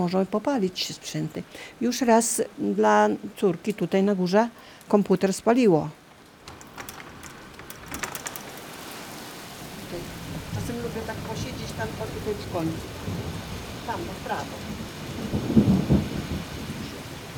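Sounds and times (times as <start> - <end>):
speech: 0.0 - 6.0, 12.2 - 13.2, 13.9 - 15.4
steady rain pattering and hissing: 0.0 - 17.3
low thunder rumbling: 6.4 - 17.3.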